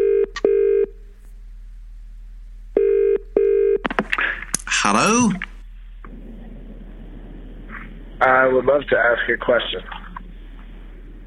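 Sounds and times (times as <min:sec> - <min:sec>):
telephone ringing with electronic trill: 0:00.0 - 0:00.9, 0:02.8 - 0:03.8
speech: 0:04.8 - 0:05.5, 0:08.4 - 0:10.0.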